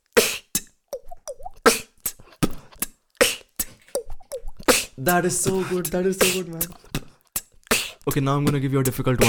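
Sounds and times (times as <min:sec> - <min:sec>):
person imitating water droplets dripping with mouth pops: 0:00.1 - 0:08.2
speech: 0:05.0 - 0:06.9, 0:08.0 - 0:09.2.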